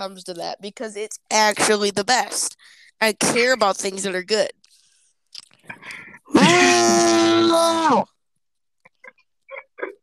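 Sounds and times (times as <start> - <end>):
speech: 0.0 - 4.6, 5.4 - 8.1
person loudly screaming a drawn-out word: 6.4 - 8.1.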